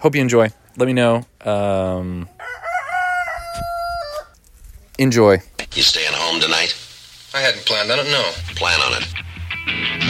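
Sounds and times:
speech: 0.0 - 2.6, 5.0 - 10.0
chickens clucking: 2.0 - 5.0
rooster crowing: 2.3 - 4.4.

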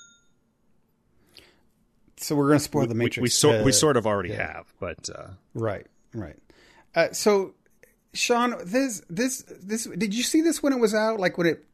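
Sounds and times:
bright clink: 0.0 - 0.4
small bell ringing with a clear metallic tone: 0.0 - 0.4
speech: 2.2 - 11.7.

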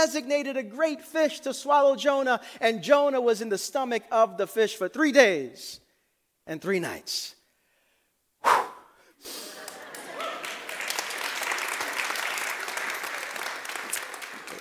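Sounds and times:
speech: 0.0 - 5.8, 6.5 - 7.4
audience at a church service clapping after a scripture reading: 9.4 - 14.5.

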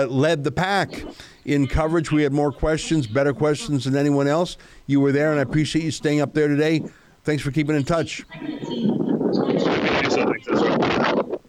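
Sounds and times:
speech: 0.0 - 11.0
voice: 0.6 - 11.4
loud steady wind buffeting an outdoor microphone: 8.0 - 11.4.

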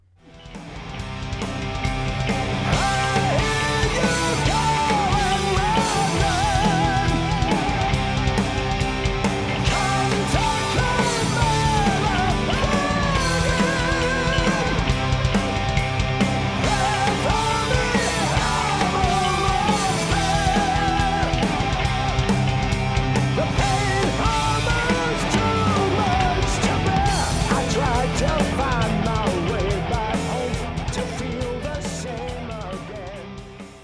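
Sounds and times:
loud dense full-band rock track: 0.2 - 33.8
male vocal line with echo effect: 2.6 - 8.3, 9.6 - 15.2, 16.6 - 22.3, 23.4 - 33.4.

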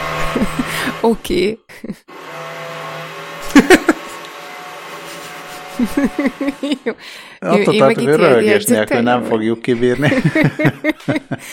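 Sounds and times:
power drill whirring: 0.0 - 1.1, 2.1 - 6.9
laughter: 0.2 - 1.0, 3.4 - 4.2, 5.1 - 8.9, 9.8 - 11.5
speech: 0.4 - 2.2, 5.8 - 11.5.

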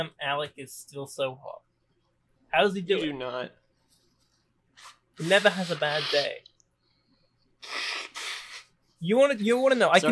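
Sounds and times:
speech: 0.0 - 1.7, 2.5 - 3.6, 4.8 - 6.5, 7.6 - 8.0, 9.0 - 10.1
person blowing their nose: 4.8 - 6.4, 7.6 - 8.8.

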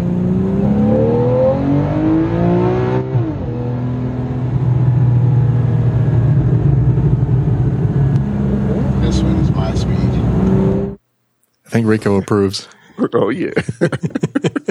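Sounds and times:
brand-new Porsche sports car engine revving at a roadshow event: 0.0 - 11.0
speech: 11.8 - 14.6
laughter: 13.3 - 14.6.

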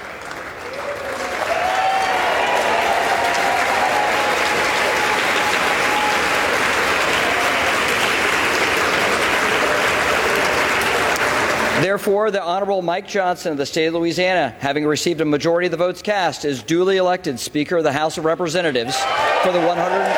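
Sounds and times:
large crowd applauding in the US House of Representatives chamber: 0.0 - 11.9, 18.9 - 20.1
faint cheering: 0.6 - 8.6, 18.8 - 20.1
speech: 11.8 - 20.1.

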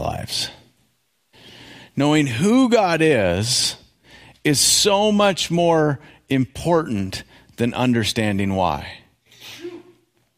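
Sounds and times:
speech: 0.0 - 0.6, 2.0 - 3.8, 4.4 - 9.6
person sneezing: 9.3 - 10.0.

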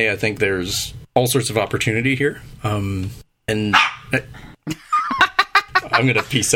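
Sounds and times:
speech: 0.0 - 4.9, 6.0 - 6.5
dog barking with whiny tones: 3.7 - 4.1
laughter: 4.7 - 6.5.

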